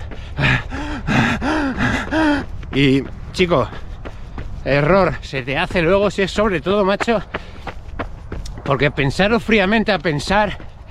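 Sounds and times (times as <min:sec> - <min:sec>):
person imitating heavy panting of a tired runner: 0:00.0 - 0:02.6
speech: 0:02.8 - 0:03.8, 0:04.6 - 0:07.4, 0:08.7 - 0:10.7.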